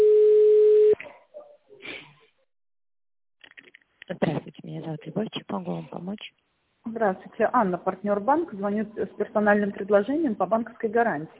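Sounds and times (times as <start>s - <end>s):
telephone line tone while a call is transferred: 0.0s - 1.0s
speech: 4.1s - 11.3s.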